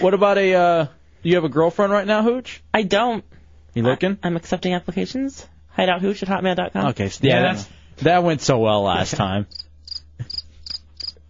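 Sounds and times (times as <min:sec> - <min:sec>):
speech: 0:00.0 - 0:09.6
crickets chirping in short high trilling bursts: 0:09.5 - 0:11.2.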